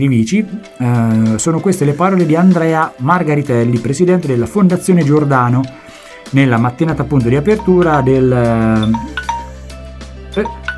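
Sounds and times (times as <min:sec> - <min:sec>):
speech: 0:00.0 - 0:09.2, 0:10.4 - 0:10.6
timer ringing: 0:08.8 - 0:09.6, 0:10.4 - 0:10.7.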